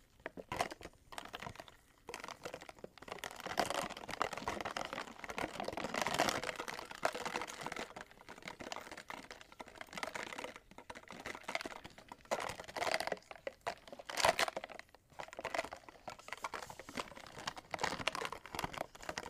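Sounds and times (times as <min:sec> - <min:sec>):
melting ice clinking and crackling: 0:00.0 - 0:19.2.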